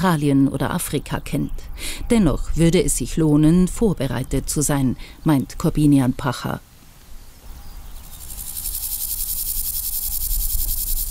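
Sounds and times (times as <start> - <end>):
speech: 0.0 - 6.7
grasshoppers chirring on a former taxiway: 7.6 - 11.0.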